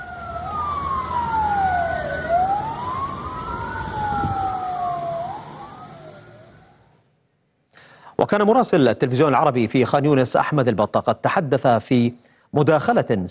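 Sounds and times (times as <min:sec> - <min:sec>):
ambulance siren wailing: 0:00.0 - 0:06.9
low rumble of traffic or engine noise: 0:00.0 - 0:07.1
speech: 0:08.3 - 0:13.2.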